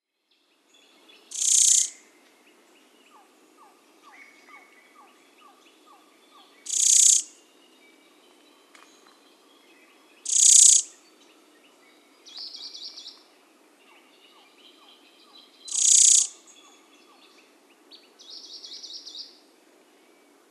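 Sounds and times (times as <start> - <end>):
crescent-chested warbler: 1.3 - 2.0, 6.6 - 7.4, 10.2 - 11.0, 15.6 - 16.8.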